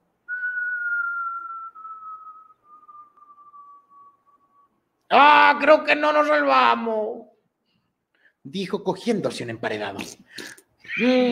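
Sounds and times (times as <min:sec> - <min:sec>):
long descending whistle: 0:00.3 - 0:04.8
speech: 0:05.1 - 0:07.3, 0:08.4 - 0:11.3.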